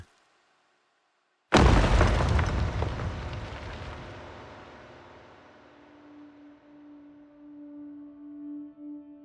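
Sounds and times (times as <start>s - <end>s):
large boulder falling with loud crashing boom and rumbling decay: 1.5s - 5.7s.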